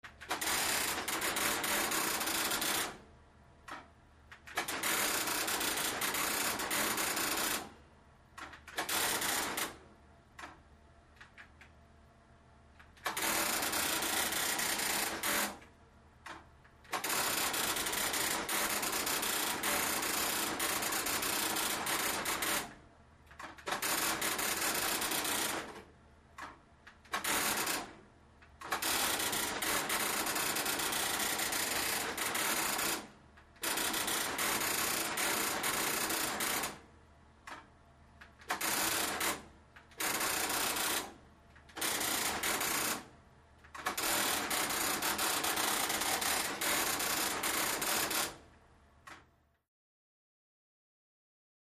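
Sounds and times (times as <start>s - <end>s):
old large printer printing: 0.2s - 3.0s, 4.5s - 7.7s, 8.6s - 9.8s, 13.1s - 15.6s, 16.9s - 22.7s, 23.4s - 25.8s, 27.0s - 27.9s, 28.6s - 36.8s, 38.4s - 41.1s, 41.7s - 43.0s, 43.8s - 48.4s.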